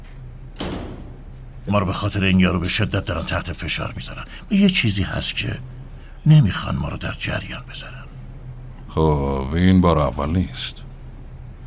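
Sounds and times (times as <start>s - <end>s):
door shutting thud: 0.6s - 1.3s
speech: 1.6s - 8.1s, 9.0s - 10.8s.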